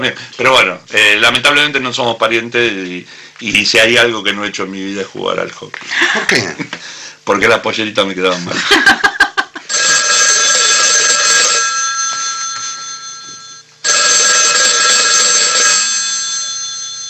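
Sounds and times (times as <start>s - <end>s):
speech: 0.0s - 9.1s
laughter: 5.8s - 6.8s, 8.3s - 9.7s
old telephone with a handle ringing: 9.7s - 17.0s.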